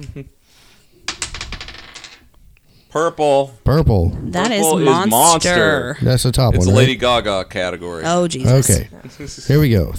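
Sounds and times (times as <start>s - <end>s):
speech: 0.0s - 0.7s, 2.9s - 9.9s
dice rattling and clattering across a board game board: 1.1s - 2.2s.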